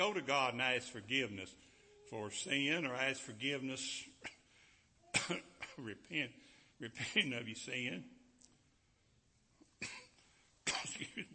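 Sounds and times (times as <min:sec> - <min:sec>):
speech: 0:00.0 - 0:04.4, 0:05.2 - 0:08.2
preacher coughing during a sermon: 0:05.1 - 0:06.0, 0:09.8 - 0:11.3.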